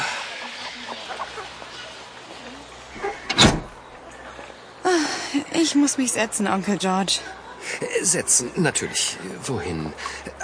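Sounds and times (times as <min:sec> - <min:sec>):
faint murmurs: 0:00.0 - 0:10.4
door opening with a clunk and rattle: 0:03.0 - 0:03.8
speech: 0:05.6 - 0:10.4.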